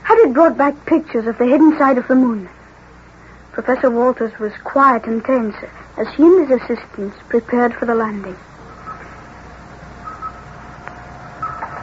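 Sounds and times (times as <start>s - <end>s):
steady hiss: 0.0s - 11.8s
speech: 0.2s - 2.6s, 3.5s - 8.5s
short electronic radar blips: 8.6s - 9.2s, 9.8s - 11.8s.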